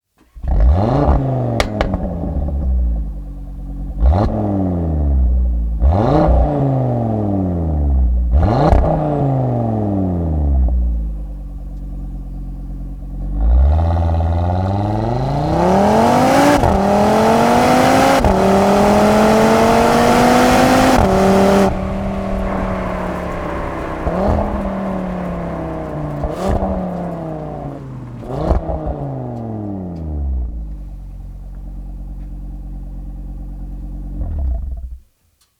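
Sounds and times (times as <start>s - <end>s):
Audi RS 3 Sportback 8Y 2023 Evolution Line exhaust: 0.3s - 35.1s.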